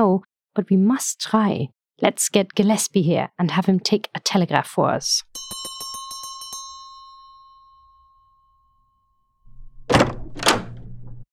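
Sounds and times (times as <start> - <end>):
speech: 0.0 - 5.8
hand bell rung to summon a servant: 5.3 - 9.4.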